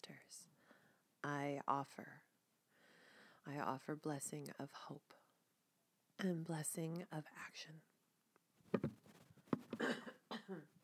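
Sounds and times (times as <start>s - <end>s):
speech: 1.2s - 2.3s, 3.4s - 5.2s, 6.2s - 7.9s, 9.8s - 10.8s
person with a cat allergy coughing: 9.7s - 10.6s.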